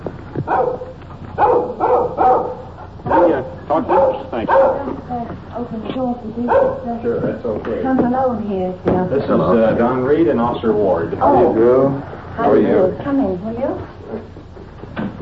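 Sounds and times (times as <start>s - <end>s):
small dog barking: 0.4s - 5.0s, 6.4s - 7.0s
speech: 0.5s - 0.9s, 5.6s - 14.2s.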